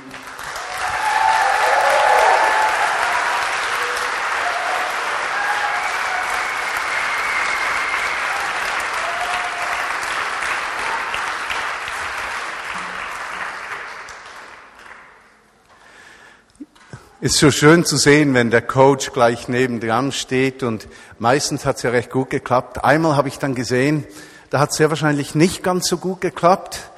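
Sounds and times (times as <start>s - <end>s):
audience applause for a children's performance: 0.0s - 15.2s
speech: 17.2s - 26.9s.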